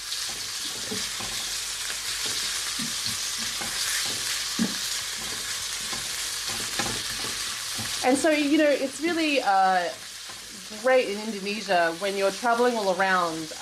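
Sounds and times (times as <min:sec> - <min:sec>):
bite-sized chicken pieces frying in a pan: 0:00.0 - 0:13.6
soft scraping and clattering from stirring chicken in a pan: 0:00.2 - 0:08.1
speech: 0:08.0 - 0:10.0, 0:10.7 - 0:13.6.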